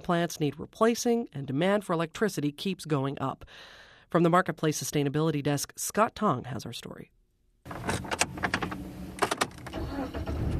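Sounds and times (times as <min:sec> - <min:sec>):
speech: 0:00.1 - 0:07.2
car engine starting after sharp clunks and rattles: 0:07.7 - 0:10.5
car driving away north of the Washington Beltway: 0:08.3 - 0:10.5.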